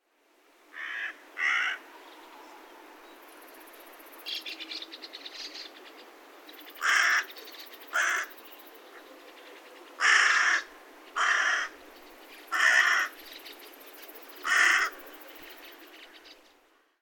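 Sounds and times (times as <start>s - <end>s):
juvenile carrion crow calling: 0.7s - 1.9s, 6.8s - 8.4s, 10.0s - 11.8s, 12.5s - 13.2s, 14.4s - 15.0s.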